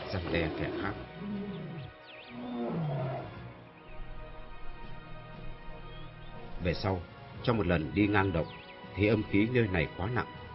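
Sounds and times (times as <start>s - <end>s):
tigers and leopards roaring in a cave: 0.0s - 3.5s
speech: 0.1s - 3.0s, 6.6s - 10.4s.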